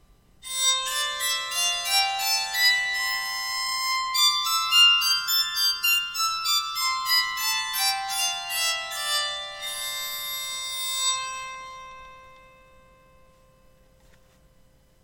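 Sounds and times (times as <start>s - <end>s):
musical scale: 0.4s - 13.8s.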